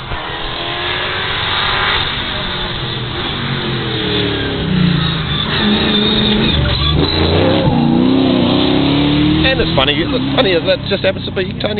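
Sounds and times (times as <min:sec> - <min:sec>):
very fast Mustang race car roaring past: 0:00.0 - 0:11.1
speech: 0:09.8 - 0:11.7.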